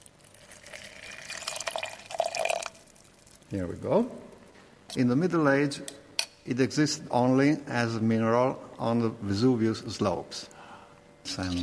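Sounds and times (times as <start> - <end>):
water poured into a glass beaker: 0.0 - 3.5
speech: 3.5 - 4.3, 4.9 - 10.5, 11.3 - 11.6.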